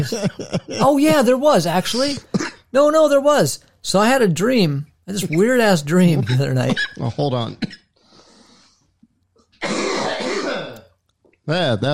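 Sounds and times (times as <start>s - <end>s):
laughter: 0.0s - 1.4s
speech: 0.0s - 7.8s, 11.5s - 11.9s
loud harsh cough: 1.9s - 2.7s, 6.2s - 7.9s, 9.6s - 10.9s
person clearing throat with a raspy rumble: 1.9s - 2.7s, 9.6s - 11.0s.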